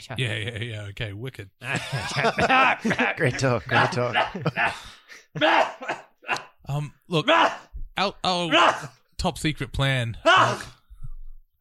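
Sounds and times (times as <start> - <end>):
speech: 0.0 - 10.8
laughter: 1.6 - 6.5
person sneezing: 3.7 - 6.5.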